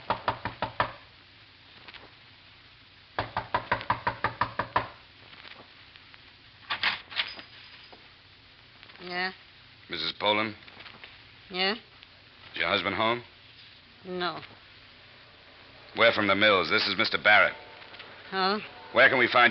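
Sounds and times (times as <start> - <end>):
sharp knocking on a door: 0.0 - 1.0, 3.2 - 5.0
speech: 10.0 - 10.7, 11.5 - 11.9, 12.6 - 13.3, 14.0 - 14.6, 16.0 - 17.6, 18.3 - 19.5.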